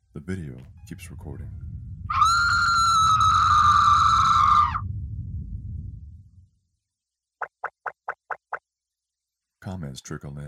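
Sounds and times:
speech: 0:00.2 - 0:02.4, 0:09.8 - 0:10.4
deep rumbling: 0:00.6 - 0:06.6
sustained piercing scream: 0:02.1 - 0:04.8.

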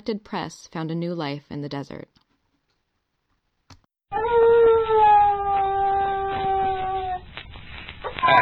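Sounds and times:
speech: 0:00.0 - 0:02.2
desert coyote howling love call: 0:04.1 - 0:07.3.

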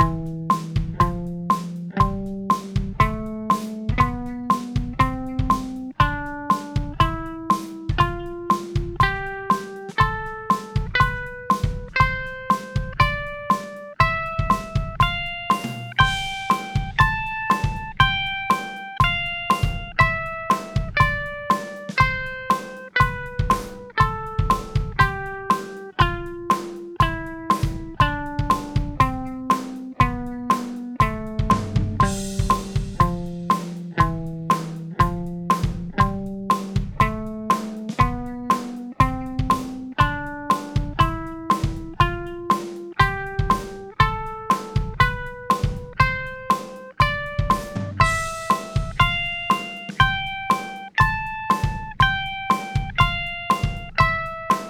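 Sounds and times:
music in A Phrygian mode at 120 bpm: 0:00.0 - 0:54.6.

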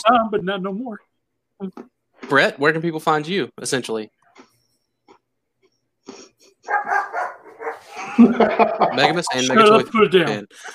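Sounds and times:
speech: 0:00.0 - 0:04.5, 0:07.8 - 0:10.7
dog barking and yelping: 0:06.6 - 0:08.0
laughter: 0:07.8 - 0:10.7.

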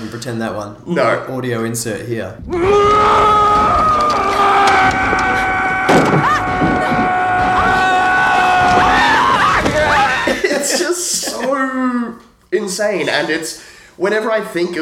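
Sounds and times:
speech: 0:00.0 - 0:03.4, 0:11.0 - 0:14.7
noisy clatter: 0:02.4 - 0:10.2
actor screaming as a villain in a horror film: 0:02.5 - 0:10.3
laughter: 0:06.3 - 0:11.8.

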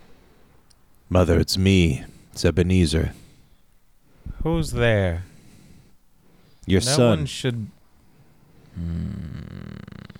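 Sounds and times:
speech: 0:01.1 - 0:03.2, 0:04.4 - 0:05.3, 0:06.6 - 0:07.8, 0:08.8 - 0:09.5
deep rumbling growl with a rough pulsing rattle: 0:08.7 - 0:10.1.

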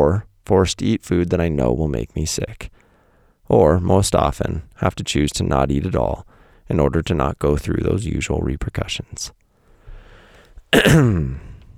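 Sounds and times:
speech: 0:00.0 - 0:02.7, 0:03.5 - 0:09.4, 0:10.7 - 0:11.5
throat clearing: 0:10.7 - 0:11.6.

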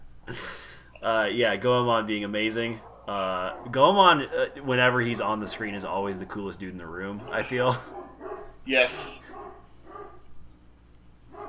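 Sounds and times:
speech: 0:01.0 - 0:08.0, 0:08.7 - 0:09.2
dogs barking: 0:02.7 - 0:04.3, 0:06.9 - 0:10.4, 0:11.2 - 0:11.4.

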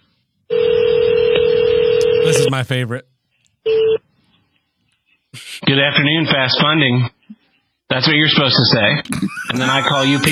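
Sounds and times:
telephone ringing with a steady electronic tone: 0:00.5 - 0:02.8
speech: 0:02.3 - 0:03.8, 0:05.7 - 0:07.1, 0:07.9 - 0:10.3
laughter: 0:09.1 - 0:10.3.

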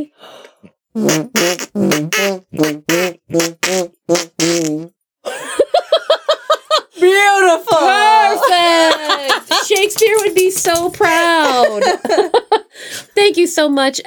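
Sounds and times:
speech: 0:00.0 - 0:03.8, 0:13.6 - 0:14.0
wet armpit-style fart noises made with hand and arm: 0:01.0 - 0:05.0
laughter: 0:05.2 - 0:12.8.

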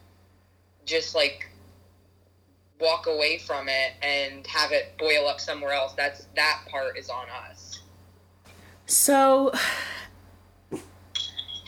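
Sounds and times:
speech: 0:00.9 - 0:01.5, 0:02.8 - 0:07.8, 0:08.9 - 0:10.0
dog snorting and sneezing: 0:10.7 - 0:11.0.

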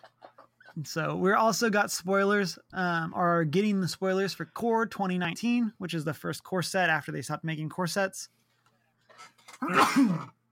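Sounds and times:
speech: 0:00.8 - 0:08.4, 0:09.2 - 0:10.4
person sneezing: 0:09.5 - 0:10.4.

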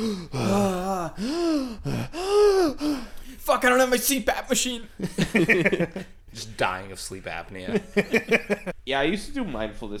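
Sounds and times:
speech: 0:00.0 - 0:02.2, 0:03.5 - 0:09.9
person making exaggerated throaty gasping breaths: 0:00.0 - 0:03.4
laughter: 0:05.0 - 0:06.2, 0:07.7 - 0:08.8.

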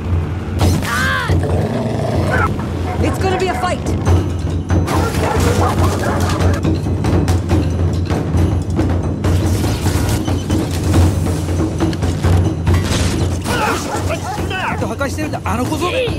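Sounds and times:
dense noisy background: 0:00.0 - 0:16.1
dog barking and yipping: 0:02.4 - 0:03.9, 0:04.8 - 0:06.6, 0:13.5 - 0:15.0.

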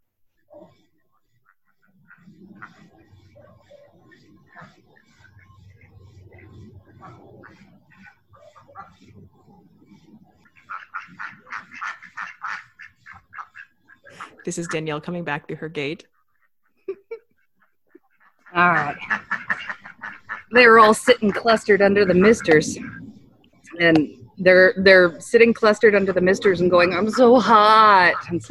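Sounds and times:
flock of ducks quacking outdoors: 0:00.5 - 0:28.4
speech: 0:14.4 - 0:16.2, 0:18.6 - 0:19.2, 0:20.5 - 0:22.9, 0:23.8 - 0:28.4.

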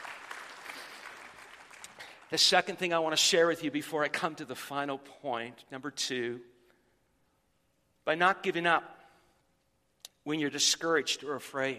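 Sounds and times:
audience clapping in praise: 0:00.0 - 0:02.3
speech: 0:02.3 - 0:06.5, 0:08.0 - 0:09.0, 0:10.3 - 0:11.7.

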